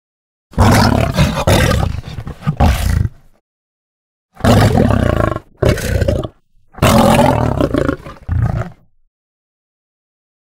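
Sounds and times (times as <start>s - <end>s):
lion roaring in deep heavy bursts: 0.6s - 3.2s, 4.4s - 8.9s.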